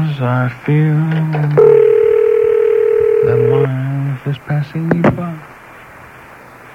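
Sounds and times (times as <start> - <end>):
speech: 0.2 - 1.7, 4.3 - 5.5
fax machine answering tone on a phone line: 1.6 - 3.7.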